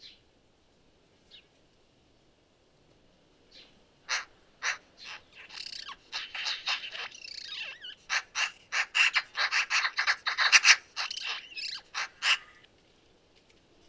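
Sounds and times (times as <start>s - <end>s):
Eurasian magpie Pica pica chattering: 4.1s - 12.7s.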